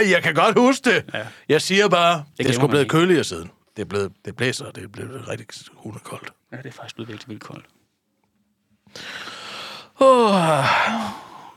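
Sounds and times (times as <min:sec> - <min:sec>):
speech: 0:00.0 - 0:07.8, 0:08.9 - 0:09.4, 0:10.0 - 0:11.2
person yawning: 0:09.9 - 0:11.5.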